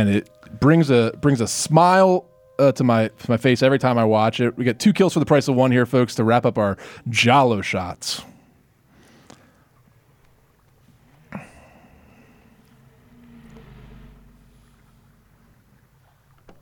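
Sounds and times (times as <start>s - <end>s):
speech: 0.0s - 8.3s
low steady rumble and wash of a burning boat on open water: 9.8s - 16.6s
engine or wind noise: 11.3s - 16.6s.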